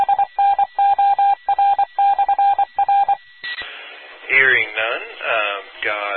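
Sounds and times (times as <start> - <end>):
single-pitched Morse code tone on an amateur radio net: 0.0 - 3.6
radio static: 3.4 - 6.1.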